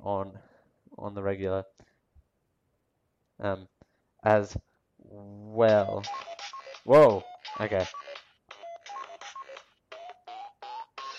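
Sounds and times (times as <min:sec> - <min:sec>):
speech: 0:00.0 - 0:01.9, 0:03.4 - 0:08.1
phone short electronic beeps as volume buttons are pressed: 0:05.6 - 0:11.1.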